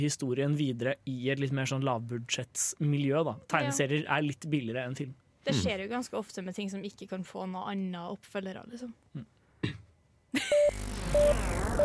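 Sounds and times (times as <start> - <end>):
speech: 0.0 - 11.8
person clearing throat: 9.1 - 9.9
steady beep-like tones: 10.5 - 11.8.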